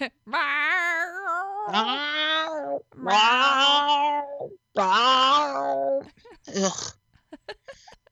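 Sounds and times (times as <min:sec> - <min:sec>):
male cat yowling meows: 0:00.4 - 0:06.1
speech: 0:01.7 - 0:02.1, 0:03.0 - 0:03.6.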